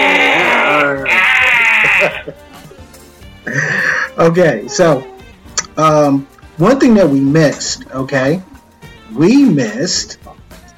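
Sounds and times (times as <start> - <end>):
goat bleating with a gargling quaver: 0.0 - 2.4
laughter: 0.3 - 4.2
speech: 2.3 - 2.5, 3.4 - 5.1, 5.8 - 8.5, 9.1 - 10.3.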